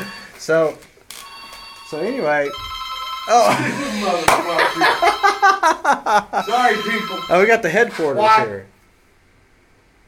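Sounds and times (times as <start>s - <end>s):
telephone electronic ring: 0.0s - 0.6s, 1.2s - 5.7s, 6.4s - 7.9s
speech: 0.4s - 0.9s, 1.9s - 8.7s
laughter: 3.4s - 6.5s.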